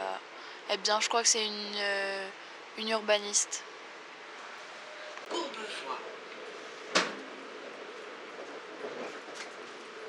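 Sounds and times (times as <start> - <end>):
speech: 0.7 - 3.7, 5.3 - 6.0
train rumbling along the rails: 3.7 - 10.0.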